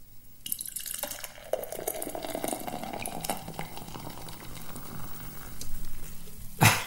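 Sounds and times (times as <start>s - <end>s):
club soda fizzing as poured over ice into a glass: 0.5s - 5.6s.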